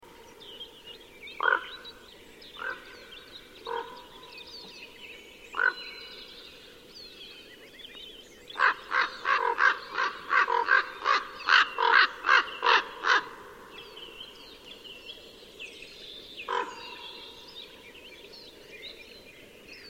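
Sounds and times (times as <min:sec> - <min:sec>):
common raven calling with hoarse caws: 0:01.4 - 0:01.8, 0:02.6 - 0:03.0, 0:03.6 - 0:04.2, 0:05.5 - 0:06.0, 0:08.6 - 0:13.5, 0:16.5 - 0:17.3.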